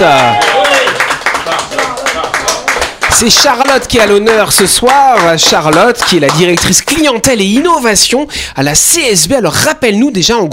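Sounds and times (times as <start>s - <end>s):
crowd applauding with dense rapid clapping: 0.0s - 6.8s
speech: 3.2s - 10.5s.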